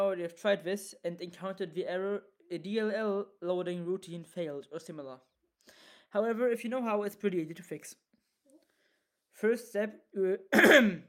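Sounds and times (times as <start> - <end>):
speech: 0.0 - 5.3, 6.1 - 8.0, 9.4 - 11.0
person clearing throat: 10.5 - 11.0.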